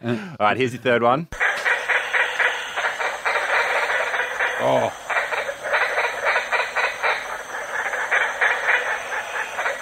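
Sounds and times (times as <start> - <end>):
speech: 0.0 - 1.4, 4.6 - 5.0
chorus of green tree frogs calling: 1.4 - 9.8.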